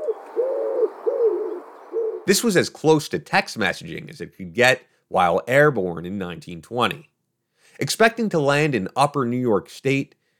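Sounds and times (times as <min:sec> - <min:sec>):
pigeon cooing: 0:00.0 - 0:02.3
speech: 0:02.3 - 0:07.1, 0:07.8 - 0:10.2.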